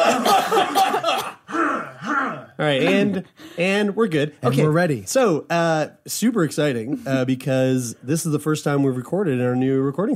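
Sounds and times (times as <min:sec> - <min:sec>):
small group of people coughing in a recording office: 0:00.0 - 0:01.8
speech: 0:02.6 - 0:10.1.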